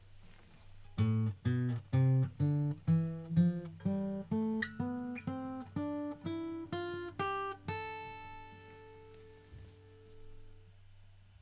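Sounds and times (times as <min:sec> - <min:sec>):
guitar playing an A minor scale: 0:01.0 - 0:10.6.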